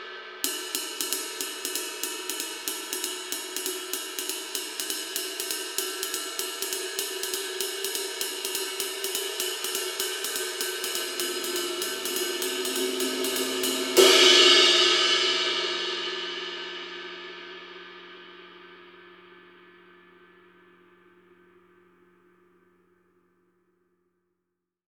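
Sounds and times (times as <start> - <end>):
23 inch K sweet ride cymbal: 0.4 - 17.0.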